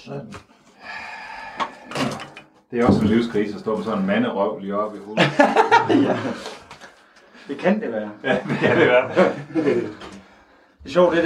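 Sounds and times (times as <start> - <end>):
speech: 0.0 - 0.4, 2.7 - 6.6, 7.5 - 10.1, 10.8 - 11.2
door thudding shut: 2.8 - 3.5
laughter: 5.2 - 6.6, 8.2 - 10.2.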